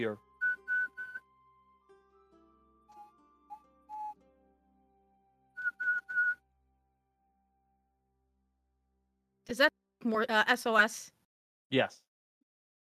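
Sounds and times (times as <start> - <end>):
speech: 0.0 - 0.3, 9.5 - 12.1
person whistling a short tune: 0.4 - 1.2, 2.9 - 4.2, 5.6 - 6.4.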